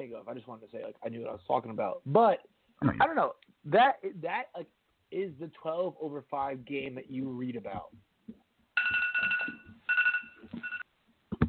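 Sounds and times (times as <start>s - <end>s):
speech: 0.0s - 8.1s
telephone ringing sound effect with electronic trilling rings: 8.8s - 10.8s.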